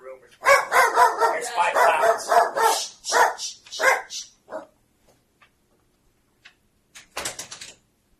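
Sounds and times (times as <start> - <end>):
dog barking: 0.4 - 4.8.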